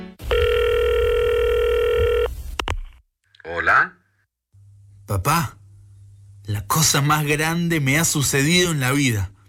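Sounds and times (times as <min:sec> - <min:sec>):
telephone ring tone on a call to parents: 0:00.2 - 0:02.3
speech: 0:05.1 - 0:05.5, 0:06.8 - 0:09.3.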